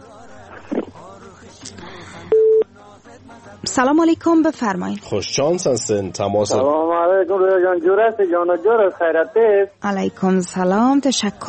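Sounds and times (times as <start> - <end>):
telephone busy tone after a call drops: 2.3 - 2.6
speech: 3.1 - 11.4.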